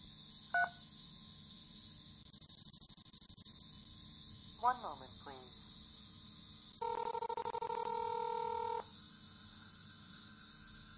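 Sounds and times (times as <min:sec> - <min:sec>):
faint steady hum: 0:00.0 - 0:10.9
telephone keypad tone in an automated phone menu: 0:00.6 - 0:00.8, 0:06.8 - 0:08.8
speech: 0:04.6 - 0:05.7.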